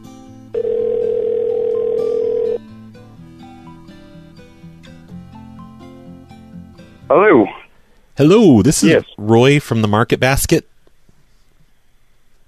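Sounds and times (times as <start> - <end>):
soft music: 0.0 - 7.1
telephone tone of a call ringing through: 0.5 - 2.6
speech: 8.2 - 10.7.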